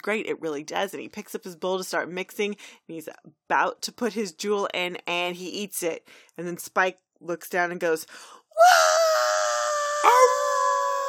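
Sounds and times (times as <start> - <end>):
speech: 0.0 - 9.0
dog howling: 10.0 - 11.0.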